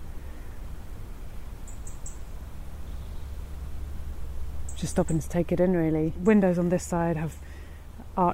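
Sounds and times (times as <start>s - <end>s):
birds chirping in the trees: 0.0s - 8.3s
low outdoor rumble: 0.0s - 8.3s
speech: 4.8s - 7.5s, 8.2s - 8.3s.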